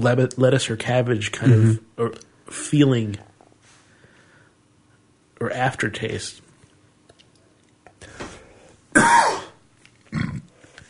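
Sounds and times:
speech: 0.0s - 3.3s, 5.4s - 6.4s
person clearing throat: 1.4s - 1.8s, 9.0s - 10.5s
person coughing: 8.9s - 10.5s.

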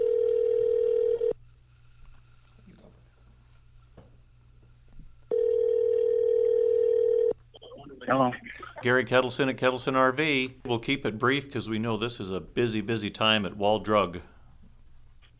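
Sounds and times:
telephone dial tone: 0.0s - 1.4s, 5.3s - 7.4s
speech: 8.1s - 14.3s.

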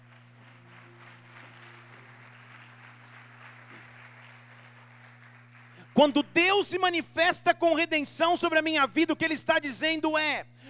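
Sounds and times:
crowd applauding: 0.0s - 6.3s
low electrical hum: 0.0s - 10.6s
speech: 6.0s - 10.6s.

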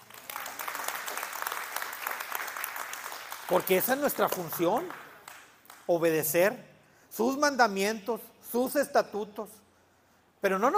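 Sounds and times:
audience applauding: 0.0s - 5.8s
speech: 3.5s - 5.0s, 5.9s - 9.6s, 10.4s - 10.7s.

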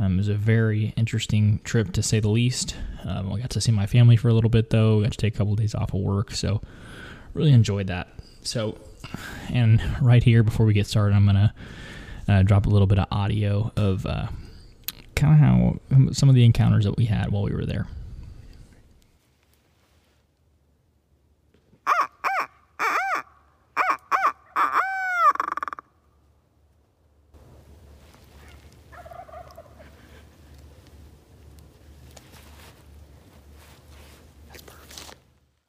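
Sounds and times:
outdoor ambience with faint bird calls: 0.0s - 35.6s
speech: 0.1s - 14.4s, 15.2s - 18.0s
loud harsh turkey-like bird calls during a turkey hunt south of the Kansas border: 21.9s - 25.9s.

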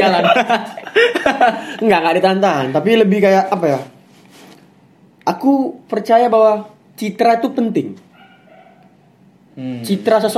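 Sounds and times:
laughter: 0.0s - 1.9s
speech: 0.0s - 4.0s, 5.3s - 8.0s, 9.6s - 10.3s
low ambient hum: 0.0s - 10.3s
dog barking with a drawn-out whiny yelp: 8.1s - 9.0s.

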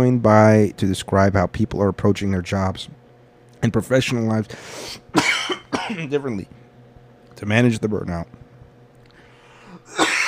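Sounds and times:
speech: 0.0s - 3.0s, 3.6s - 5.3s, 5.9s - 6.6s, 7.4s - 8.4s
person coughing: 5.2s - 6.1s, 9.6s - 10.2s.

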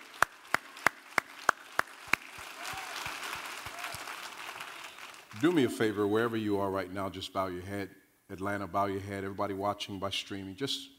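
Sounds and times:
audience applause: 0.0s - 5.7s
sharp evenly spaced claps: 0.0s - 5.7s
speech: 5.4s - 10.9s.

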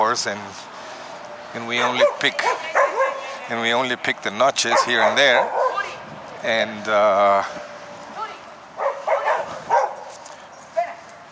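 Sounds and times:
speech: 0.0s - 0.8s, 1.5s - 2.9s, 3.5s - 5.6s, 6.4s - 7.7s
big older female dog barking and whimpering: 1.8s - 3.5s, 4.7s - 6.0s, 8.8s - 10.1s.

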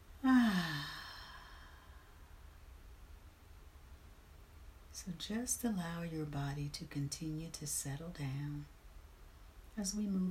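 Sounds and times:
deep loud exhale during a guided breathing exercise: 0.2s - 2.3s
speech: 5.0s - 8.8s, 9.8s - 10.2s.

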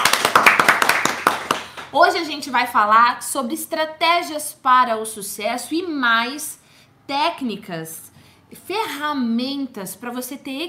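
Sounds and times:
brisk hand clapping: 0.0s - 2.0s
speech: 1.9s - 10.6s.

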